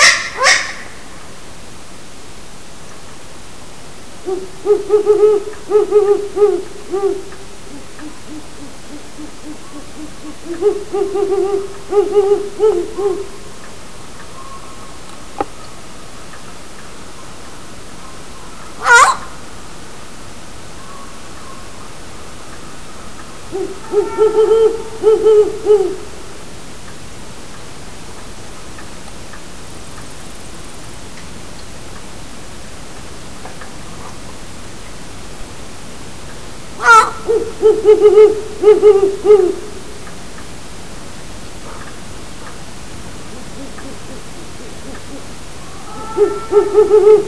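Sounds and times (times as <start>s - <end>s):
young great horned owl calling: 0.0s - 1.0s, 4.2s - 13.5s, 18.5s - 19.4s, 22.5s - 26.2s, 36.8s - 39.9s, 43.2s - 47.2s
great horned owl calling: 0.0s - 1.1s, 4.2s - 13.6s, 18.0s - 19.4s, 20.8s - 26.3s, 36.8s - 40.0s, 43.2s - 47.2s.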